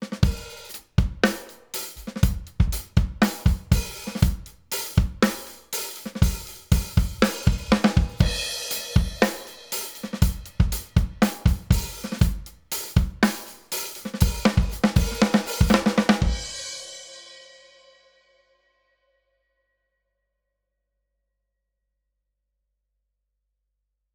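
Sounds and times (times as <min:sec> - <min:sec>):
drums through a compressor: 0:00.0 - 0:16.6.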